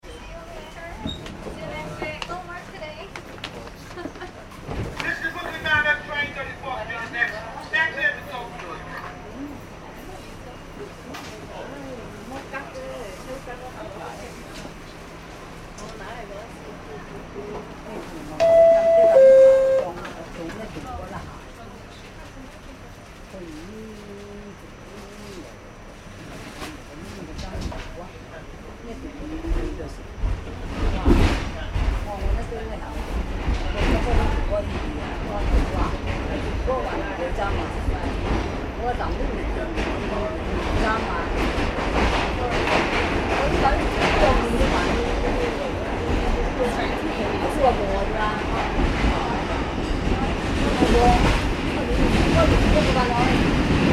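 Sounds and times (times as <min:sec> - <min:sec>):
subway train starting, running and stopping heard onboard in NYC: 0:00.0 - 0:53.9.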